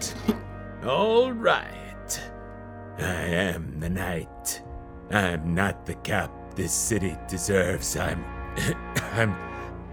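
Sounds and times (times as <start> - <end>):
loud raspy throat clearing: 0.0 - 0.5, 8.6 - 9.2
short sharp cough: 0.0 - 0.5, 8.6 - 9.2
speech: 0.8 - 2.2, 3.0 - 9.5.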